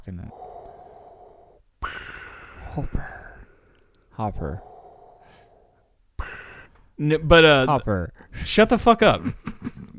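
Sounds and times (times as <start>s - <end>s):
speech: 0.0s - 0.5s, 2.8s - 3.1s, 4.2s - 4.7s, 7.0s - 9.5s
person imitating a masked villain's mechanical respirator breathing: 0.0s - 7.6s.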